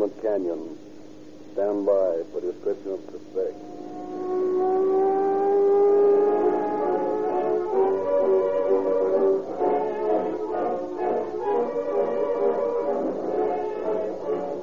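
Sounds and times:
speech: 0:00.0 - 0:00.9, 0:01.6 - 0:03.9
police patrol car engine humming on a dark road: 0:03.4 - 0:14.6.

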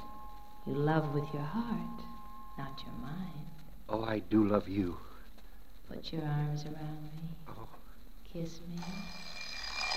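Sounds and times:
speech: 0:00.7 - 0:05.1, 0:05.9 - 0:09.4
alarm clock ringing with a metallic jangle: 0:08.8 - 0:09.9.

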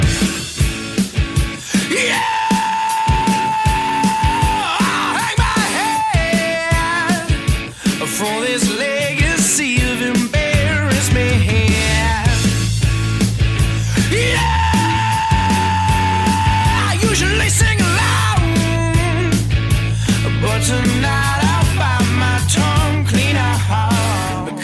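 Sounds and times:
loud rock band with heavy bass and drums: 0:00.0 - 0:24.6
male vocalist belting a long strained screamed yeah: 0:01.7 - 0:07.3, 0:13.8 - 0:18.5.

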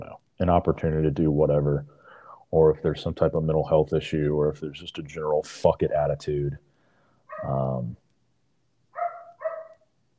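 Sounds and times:
speech: 0:00.0 - 0:06.7, 0:07.4 - 0:08.0
German Shepherd dog barking: 0:07.3 - 0:07.6, 0:09.0 - 0:09.9.

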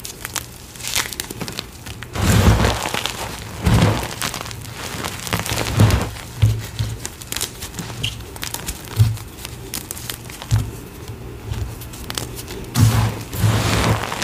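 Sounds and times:
gym chalk carved and crushed: 0:02.1 - 0:10.8, 0:11.5 - 0:14.2.

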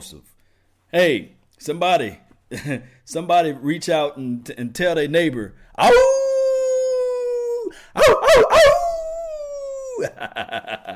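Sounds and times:
speech: 0:00.0 - 0:06.2, 0:10.0 - 0:10.9
man imitating a wolf howl: 0:05.8 - 0:10.2
laughter: 0:10.0 - 0:10.9.

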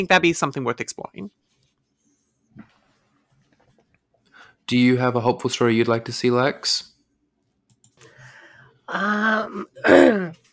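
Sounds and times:
speech: 0:00.0 - 0:01.4, 0:04.7 - 0:06.9, 0:08.9 - 0:10.4
person clearing throat: 0:09.5 - 0:10.4.

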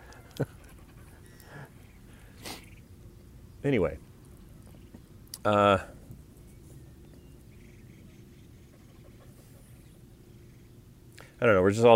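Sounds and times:
dog panting and sniffing around: 0:00.1 - 0:01.8, 0:08.6 - 0:09.7
speech: 0:00.4 - 0:00.6, 0:03.6 - 0:04.1, 0:05.4 - 0:05.9, 0:11.4 - 0:11.9.

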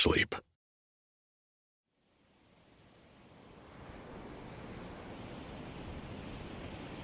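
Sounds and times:
speech: 0:00.0 - 0:00.4
Pacific Ocean waves breaking on beach: 0:03.3 - 0:07.0.

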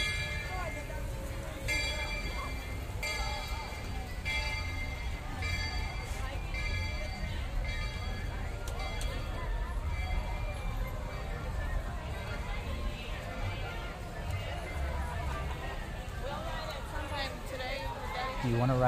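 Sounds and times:
train bell clanging: 0:00.0 - 0:12.4
faint crowd chatter: 0:00.0 - 0:18.8
speech: 0:18.5 - 0:18.8.

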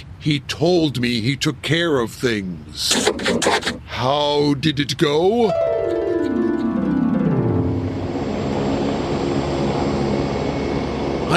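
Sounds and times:
speech: 0:00.2 - 0:05.7
helicopter flying away: 0:05.6 - 0:11.3
loud steady helicopter rotor roar and rumble: 0:06.3 - 0:11.3.

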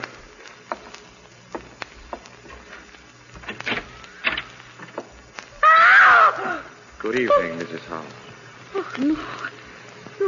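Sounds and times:
bedroom door creaking squeal swinging open: 0:03.3 - 0:05.1
speech: 0:07.1 - 0:08.3, 0:09.0 - 0:09.5.

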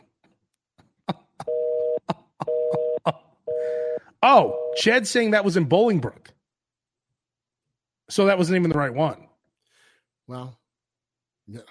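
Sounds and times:
telephone busy signal in low dual tone bursts: 0:01.5 - 0:04.8
fax machine tone: 0:01.5 - 0:05.0
speech: 0:04.2 - 0:06.3, 0:08.1 - 0:09.2, 0:10.3 - 0:10.6, 0:11.5 - 0:11.7.

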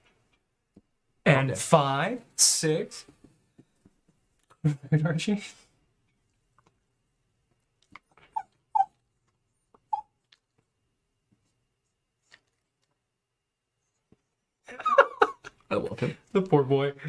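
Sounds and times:
speech: 0:01.4 - 0:03.2, 0:04.6 - 0:05.6, 0:16.0 - 0:17.0
male dog whining and whimpering in high-pitched yelps: 0:08.3 - 0:09.0
laughter: 0:14.7 - 0:16.2.

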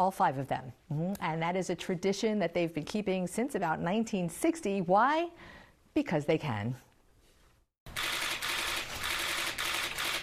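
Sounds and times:
speech: 0:00.0 - 0:06.9
press camera shutters clicking: 0:08.0 - 0:10.2.

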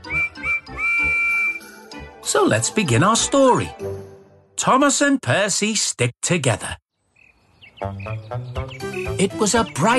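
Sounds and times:
steam whistle of a small green tank engine: 0:00.0 - 0:01.7
speech: 0:02.3 - 0:03.9, 0:04.6 - 0:06.8, 0:07.8 - 0:09.9.

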